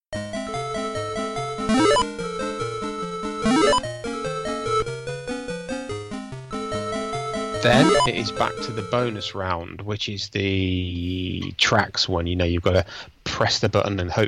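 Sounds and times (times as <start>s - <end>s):
bleepy arcade game music from a paint roller level: 0.5s - 5.1s, 6.7s - 9.2s
speech: 7.6s - 14.2s.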